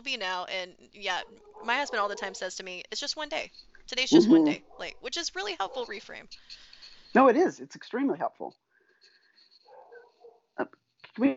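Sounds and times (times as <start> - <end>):
speech: 0.0 - 8.6, 10.6 - 11.3
dog giving sharp barks: 1.2 - 2.5, 4.5 - 5.0, 5.6 - 6.0, 9.7 - 10.5.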